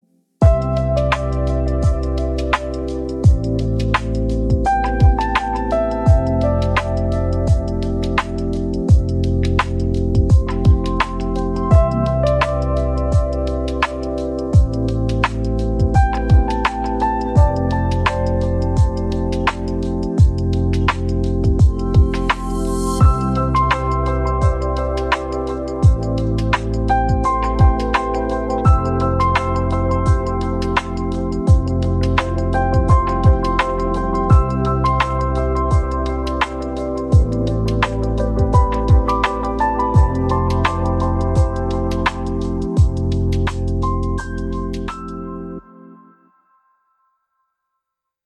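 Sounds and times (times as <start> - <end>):
steady music groove in C: 0.4 - 45.2.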